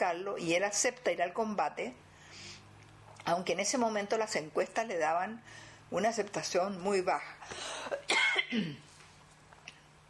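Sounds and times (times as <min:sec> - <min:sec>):
speech: 0:00.0 - 0:02.1, 0:03.3 - 0:08.9
faint steady hum: 0:00.0 - 0:10.0
person coughing: 0:07.8 - 0:08.9.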